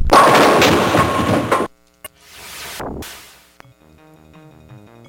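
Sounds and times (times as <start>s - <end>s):
bowling ball rolling down the lane in a video game: 0.1s - 1.7s.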